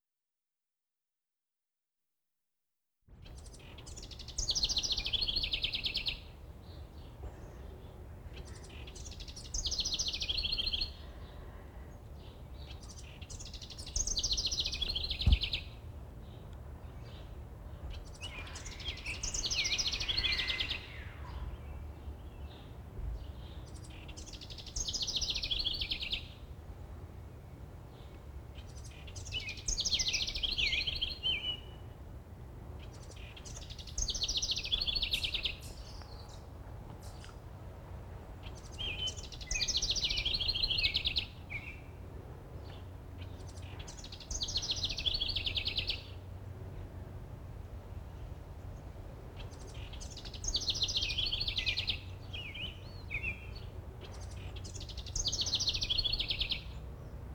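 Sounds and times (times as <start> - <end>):
background noise: 3.1 - 57.3
wrens singing: 3.2 - 7.1, 8.3 - 11.0, 12.2 - 15.7, 16.4 - 26.4, 28.0 - 31.9, 32.8 - 37.5, 38.4 - 41.9, 42.6 - 46.3, 48.2 - 57.2.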